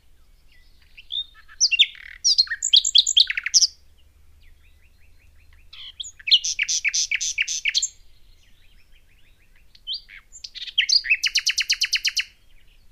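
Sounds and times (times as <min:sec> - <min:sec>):
common nightingale Luscinia megarhynchos song with chirps whistles and trills: 0:00.0 - 0:12.8.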